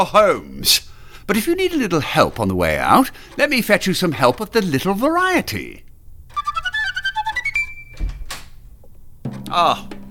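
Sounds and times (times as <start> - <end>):
speech: 0.0 - 5.9, 9.5 - 9.9
door opening chime: 6.3 - 8.6
door thud: 7.6 - 8.6, 9.2 - 10.0.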